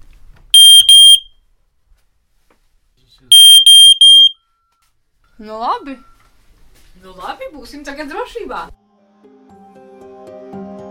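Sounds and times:
ceiling smoke detector test alarm beeping: 0.6s - 1.3s, 3.3s - 4.4s
speech: 3.2s - 3.6s, 5.4s - 6.1s, 7.0s - 8.8s.

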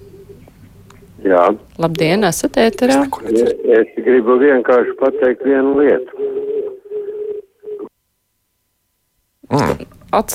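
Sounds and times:
speech: 1.2s - 6.4s, 9.5s - 10.3s
phone-line feedback echo from a caller's radio set switched on: 2.5s - 7.9s.

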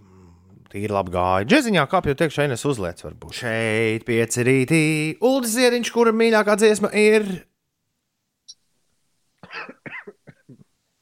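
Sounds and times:
speech: 0.7s - 7.5s
harsh coughs: 9.4s - 10.7s.

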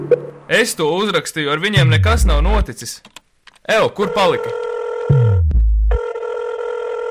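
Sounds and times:
speech: 0.5s - 4.7s
telephone ringing unanswered with steady electronic ring: 4.4s - 5.2s, 6.0s - 7.0s.

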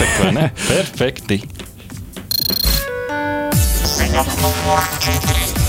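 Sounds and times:
laughter: 0.0s - 0.8s
speech: 0.1s - 1.6s, 4.1s - 5.5s
phone ringtone playing: 2.3s - 2.8s.

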